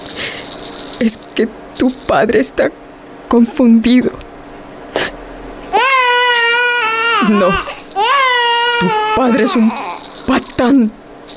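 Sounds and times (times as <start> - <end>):
speech: 1.0 - 4.3, 7.3 - 7.8, 8.8 - 11.0
baby crying: 5.6 - 10.7.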